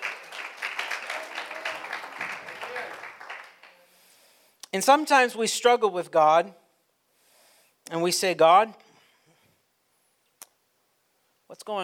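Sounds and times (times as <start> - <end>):
audience applause: 0.0 - 3.9
speech: 4.7 - 6.6, 7.9 - 8.8, 11.5 - 11.8.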